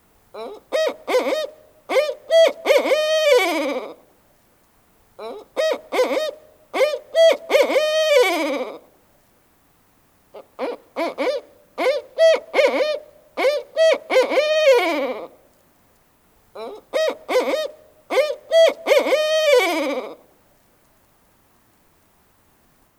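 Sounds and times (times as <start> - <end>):
barred owl: 0.4 - 4.0, 5.2 - 8.8, 10.4 - 15.4, 16.6 - 20.2.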